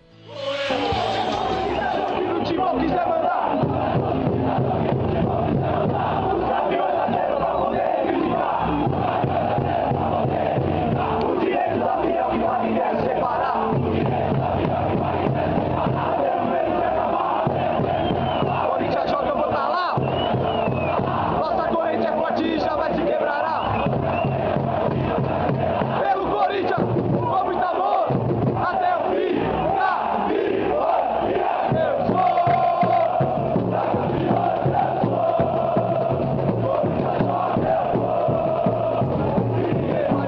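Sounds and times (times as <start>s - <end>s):
football supporters' crowd chanting in unison in a stadium: 0.0s - 40.2s.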